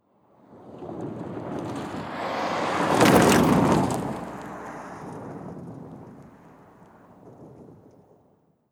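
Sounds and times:
Suzuki passing: 0.5 - 7.8.

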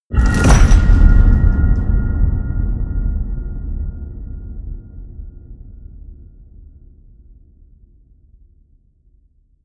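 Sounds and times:
medium hollow metal crash ringing out: 0.1 - 2.4.

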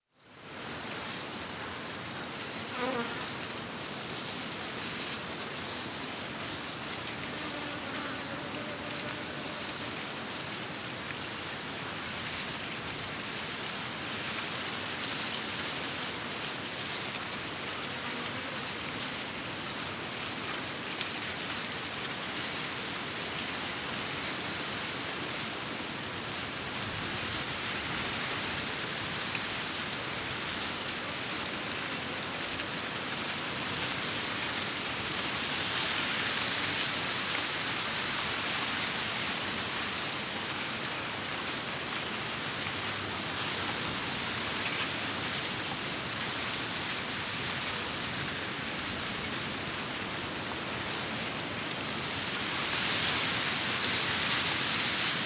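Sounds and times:
wind: 0.0 - 55.2
flies buzzing: 7.2 - 10.0.

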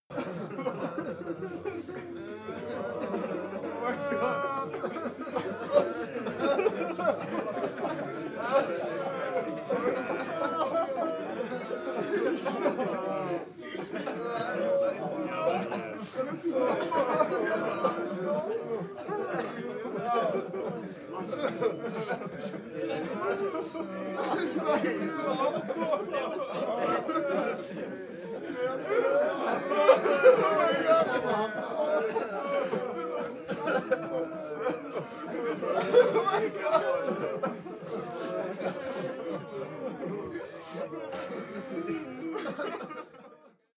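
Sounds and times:
sad crowd walla: 0.0 - 43.7
laughter: 0.1 - 43.7.

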